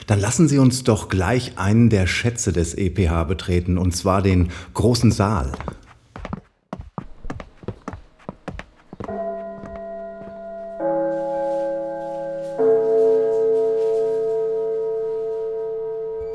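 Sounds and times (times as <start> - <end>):
speech: 0.1 - 5.8
hollow footsteps: 4.4 - 14.6
venue gong chiming to announce start of event: 9.1 - 16.3.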